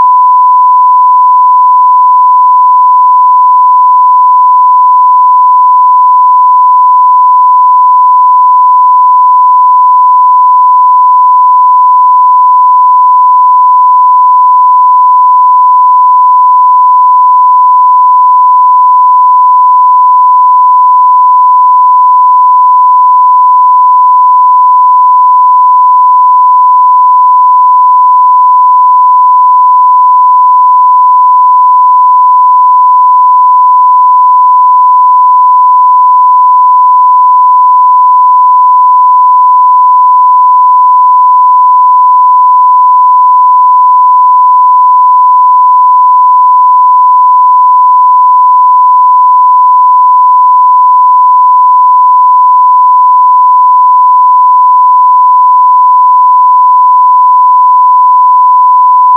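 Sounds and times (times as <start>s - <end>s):
1 kHz tone: 0.0s - 59.1s.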